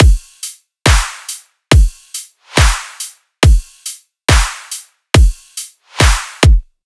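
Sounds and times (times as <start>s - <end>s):
riddim drum loop: 0.0s - 6.7s.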